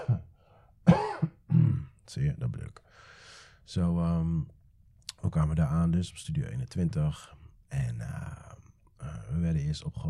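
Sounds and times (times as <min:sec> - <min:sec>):
person coughing: 0:00.0 - 0:02.0
speech: 0:02.1 - 0:04.6, 0:05.2 - 0:08.4, 0:09.3 - 0:10.0.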